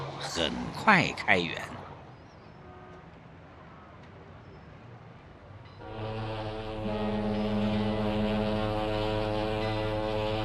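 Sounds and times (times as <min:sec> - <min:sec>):
speech: 0:00.3 - 0:01.8
passenger ship's horn long deep blast: 0:05.8 - 0:10.4.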